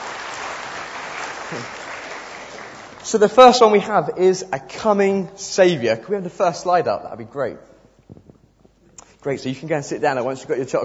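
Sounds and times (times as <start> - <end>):
audience applause after a reading: 0.0 - 3.1
speech: 1.5 - 1.8, 3.0 - 7.7, 9.2 - 10.8.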